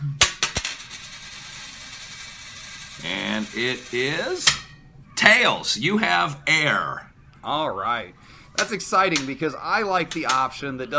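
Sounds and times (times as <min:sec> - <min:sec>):
quarter coin clattering onto a hard surface: 0:00.2 - 0:04.5
speech: 0:03.0 - 0:04.6, 0:05.2 - 0:10.9.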